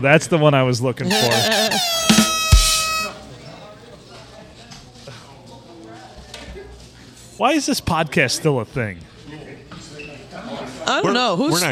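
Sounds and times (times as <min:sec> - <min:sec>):
speech: 0:00.0 - 0:02.1, 0:07.4 - 0:09.4, 0:10.9 - 0:11.7
loud brassy air horn honking: 0:01.1 - 0:03.3.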